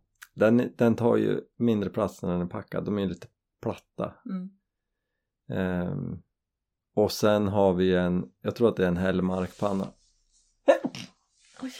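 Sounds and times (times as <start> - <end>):
speech: 0.4 - 4.6, 5.5 - 6.3, 7.0 - 10.0, 10.6 - 11.7
person sneezing: 10.7 - 11.1.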